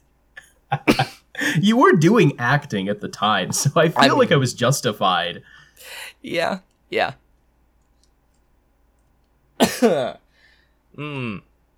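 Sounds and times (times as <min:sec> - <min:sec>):
raspy cough: 0:00.7 - 0:01.3, 0:09.6 - 0:10.2
speech: 0:01.4 - 0:07.2, 0:09.8 - 0:10.2, 0:11.0 - 0:11.5.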